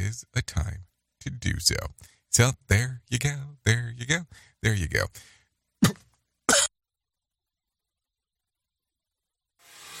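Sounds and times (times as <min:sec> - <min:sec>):
speech: 0:00.1 - 0:06.0
person coughing: 0:05.8 - 0:06.8.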